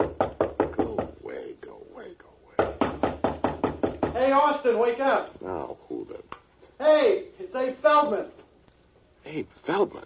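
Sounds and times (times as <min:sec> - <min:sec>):
knocking on a door: 0:00.0 - 0:01.2, 0:02.6 - 0:04.5
speech: 0:04.3 - 0:05.8, 0:06.8 - 0:08.4, 0:09.3 - 0:10.0.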